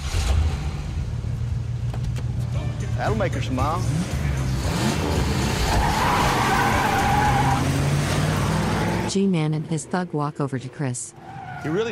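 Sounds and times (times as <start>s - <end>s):
truck engine driving off with a low rumble: 0.0s - 11.9s
speech: 3.0s - 4.2s, 9.1s - 11.9s.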